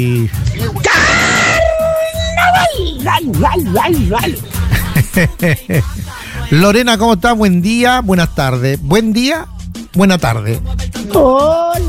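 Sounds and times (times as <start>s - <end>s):
speech: 0.0s - 1.0s, 2.8s - 4.6s, 5.2s - 11.8s
man imitating a singer's high-pitched yell: 0.8s - 4.4s
laughter: 1.8s - 6.5s.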